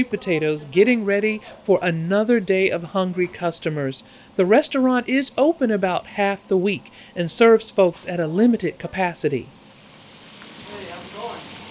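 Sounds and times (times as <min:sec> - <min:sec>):
speech: 0:00.0 - 0:09.6
pan-fried chicken sizzling in a restaurant kitchen: 0:09.8 - 0:11.7.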